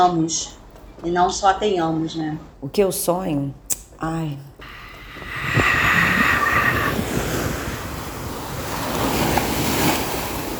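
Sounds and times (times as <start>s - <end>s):
speech: 0.0s - 5.6s
ocean waves breaking on shore: 5.8s - 10.5s.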